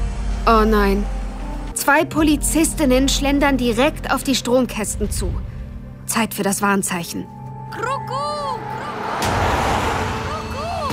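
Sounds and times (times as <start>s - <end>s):
speech: 0.5s - 1.2s, 1.8s - 5.5s, 6.1s - 8.7s
loud street traffic with cars rushing past: 8.3s - 10.9s.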